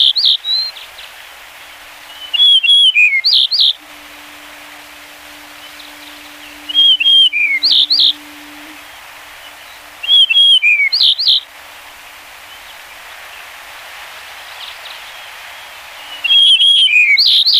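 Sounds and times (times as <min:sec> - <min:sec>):
background hiss: 0:00.0 - 0:17.5
yellow-breasted bunting singing whistled phrase: 0:03.6 - 0:11.4
faint low hum: 0:03.8 - 0:13.7.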